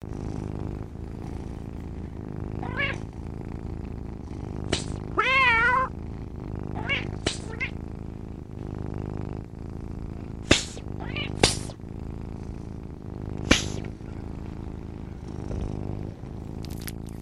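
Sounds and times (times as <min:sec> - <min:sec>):
steady low rumble: 0:00.0 - 0:17.1
cat meowing: 0:02.6 - 0:03.0, 0:05.2 - 0:05.9, 0:06.8 - 0:07.8, 0:11.0 - 0:11.4.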